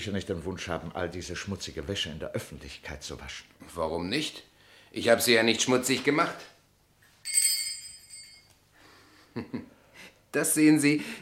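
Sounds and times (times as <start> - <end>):
speech: 0.0 - 6.5, 9.4 - 11.2
bell rung to summon a servant: 7.2 - 8.6.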